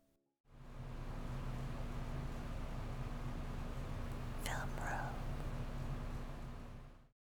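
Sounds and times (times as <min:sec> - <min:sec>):
steady recorder hiss: 0:00.6 - 0:07.0
faint whispering on recorder playback: 0:04.1 - 0:06.1.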